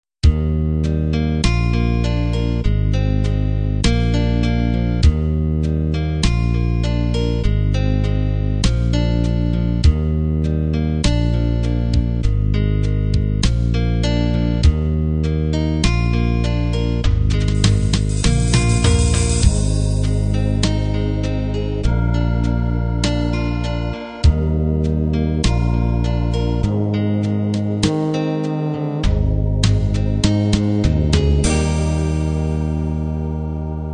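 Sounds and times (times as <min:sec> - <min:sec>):
country-pop ballad: 0:00.4 - 0:33.9.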